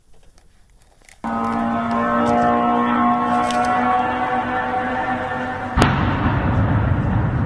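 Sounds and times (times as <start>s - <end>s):
Iranian-made suicide drone engine whine at night over Bila Tserkva: 1.2s - 7.4s
rough rumbling roar of explosion: 1.2s - 7.4s
loud drone explosion over Bila Tserkva: 5.7s - 7.4s.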